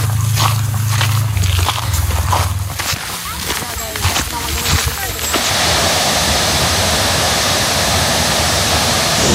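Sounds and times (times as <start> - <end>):
voices: 0.0 - 5.5
waterfall rushing through the 7 Scări canyon at Brașov: 3.4 - 9.3.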